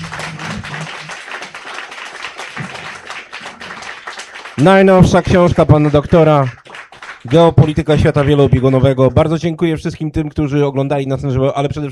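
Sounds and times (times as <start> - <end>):
audience applause: 0.0 - 9.0
speech: 4.6 - 6.6, 7.3 - 11.9.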